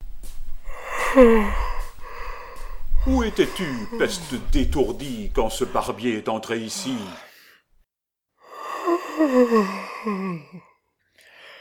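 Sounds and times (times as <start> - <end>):
performer voicing a sleepy drawn-out yawn: 0.6 - 4.8, 6.8 - 7.6, 8.4 - 10.8
speech: 1.2 - 1.6, 3.0 - 7.3, 9.2 - 10.7.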